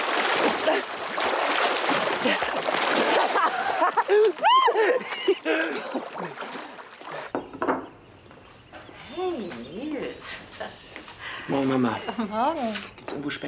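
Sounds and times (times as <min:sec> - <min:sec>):
vigorous splashing in water: 0:00.0 - 0:07.4
excited high-pitched voices calling out and laughing: 0:03.3 - 0:05.9
speech: 0:11.5 - 0:13.4.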